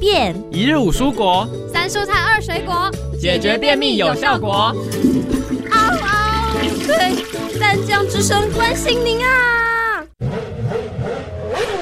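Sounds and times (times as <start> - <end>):
speech: 0.0 - 9.7
motorbike engine revving as throttle is opened: 10.2 - 11.8.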